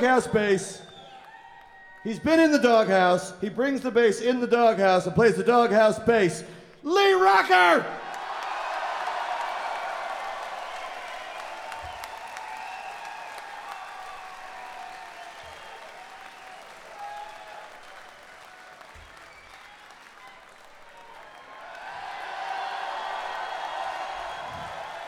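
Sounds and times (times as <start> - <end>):
speech: 0.0 - 0.9, 2.0 - 8.0
audience applauding: 0.0 - 2.9, 8.0 - 25.0.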